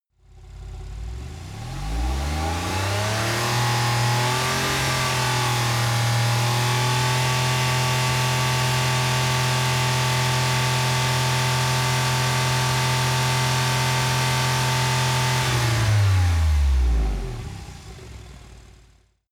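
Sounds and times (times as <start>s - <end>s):
sports car engine at rpm step 6, exterior: 0.2s - 19.2s.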